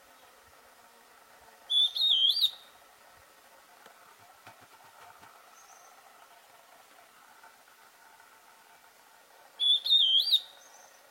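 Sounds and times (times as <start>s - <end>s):
antbird whistled song phrase: 1.7s - 2.7s, 9.6s - 11.0s.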